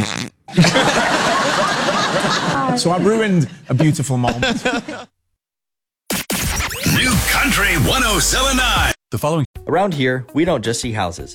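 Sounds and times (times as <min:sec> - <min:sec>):
person farting: 0:00.0 - 0:00.5
laughter: 0:00.5 - 0:03.2, 0:04.3 - 0:05.1
speech: 0:02.8 - 0:05.1, 0:07.4 - 0:11.3
steady broad noise: 0:06.1 - 0:09.0.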